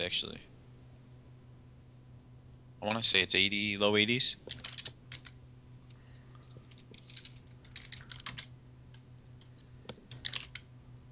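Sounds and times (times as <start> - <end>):
speech: 0.1 - 0.5, 2.8 - 4.8
typing on a computer keyboard: 4.5 - 5.4, 6.4 - 8.5, 9.9 - 10.7.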